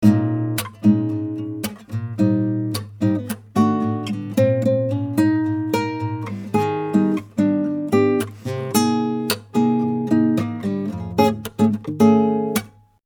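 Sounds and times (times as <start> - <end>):
dry acoustic guitar: 0.0 - 13.0.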